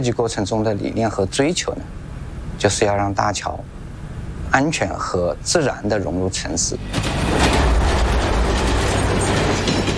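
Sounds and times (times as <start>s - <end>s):
speech: 0.0s - 3.8s, 4.5s - 7.6s
fast train rushing past with rumbling wheels and rushing air: 6.7s - 9.9s.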